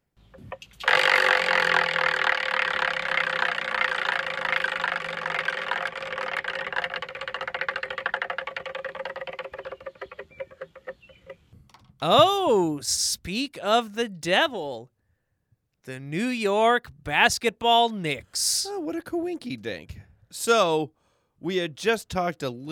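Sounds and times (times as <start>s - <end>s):
prize wheel whirring as it is spun: 0.8s - 10.7s
speech: 12.0s - 14.9s, 15.9s - 22.7s.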